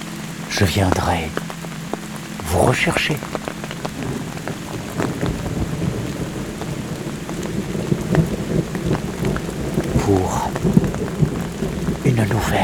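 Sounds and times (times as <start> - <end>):
steady hissing rain in the Pyrenees: 0.0 - 12.6
speech: 0.6 - 1.6, 2.5 - 4.3, 12.2 - 12.6
thunder moving away in the Pyrenees: 3.9 - 12.6.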